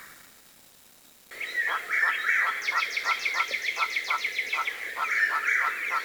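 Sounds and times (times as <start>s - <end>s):
bird song with a brief warbled phrase: 1.3s - 6.0s.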